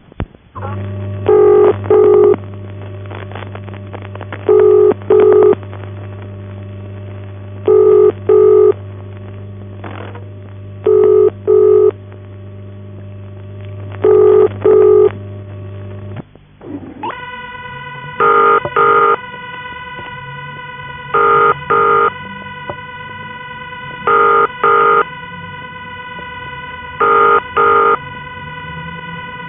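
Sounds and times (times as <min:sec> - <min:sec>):
loud steady electrical hum: 0:00.0 - 0:29.4
harsher higher buzzing tone: 0:00.5 - 0:16.2, 0:17.0 - 0:29.4
telephone ringing tone with double-pulse cadence: 0:01.3 - 0:02.4, 0:04.5 - 0:05.6, 0:07.7 - 0:08.8, 0:10.8 - 0:12.0, 0:14.0 - 0:15.2, 0:17.0 - 0:29.4.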